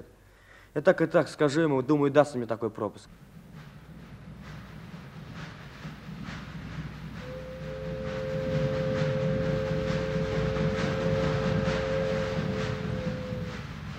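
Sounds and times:
speech: 0.7 - 3.4
train rumbling into a station: 3.0 - 13.9
long steady high whine of approaching train: 3.1 - 13.9.

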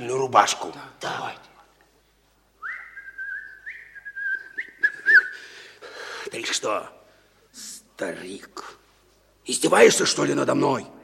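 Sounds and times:
speech: 0.0 - 1.5, 6.3 - 7.0, 7.6 - 8.8, 9.5 - 11.0
man whistling a short tune: 2.6 - 5.5.

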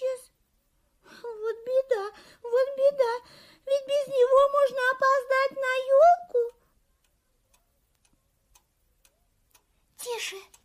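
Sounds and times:
person speaking: 1.2 - 6.6, 9.9 - 10.6
alarm clock ticking in a basement: 2.6 - 10.6.

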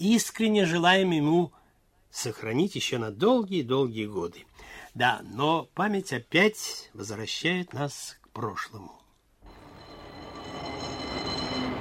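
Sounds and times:
speech: 0.0 - 9.0
tram car rolling on rails with a metallic whine: 9.5 - 11.7.

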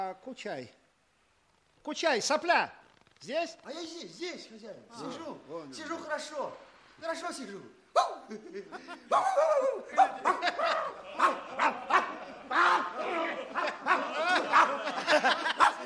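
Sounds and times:
speech: 0.1 - 0.8, 1.8 - 15.6
person imitating a barking dog: 8.0 - 8.3, 9.1 - 13.0
person chuckling: 8.3 - 15.8.

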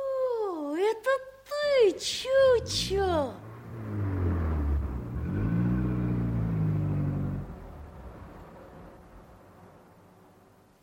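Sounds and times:
speech: 0.9 - 3.5
car engine revving as it accelerates: 2.3 - 10.2.

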